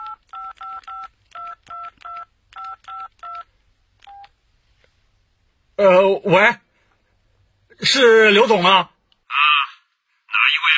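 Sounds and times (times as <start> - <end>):
mobile phone keypad tones dialing a number: 0.0 - 4.3
speech: 5.8 - 6.6, 7.8 - 8.9.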